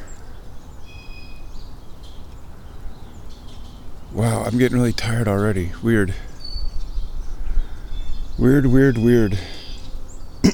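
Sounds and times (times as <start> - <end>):
birds calling from above: 0.0 - 10.5
speech: 4.1 - 6.3, 8.4 - 9.6
outdoor wind noise: 6.5 - 9.3.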